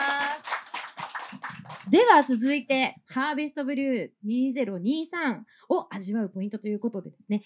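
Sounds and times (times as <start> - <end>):
audience applause: 0.0 - 2.2
speech: 1.9 - 7.4.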